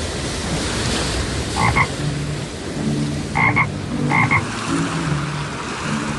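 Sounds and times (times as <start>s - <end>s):
rushing floodwater and surf: 0.0s - 6.1s
toad croaking in short double bursts: 1.6s - 1.9s, 3.3s - 4.5s.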